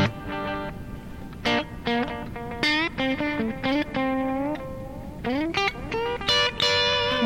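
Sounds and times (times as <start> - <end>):
electric guitar played through a modulated reverb and delay pedal: 0.0 - 7.2.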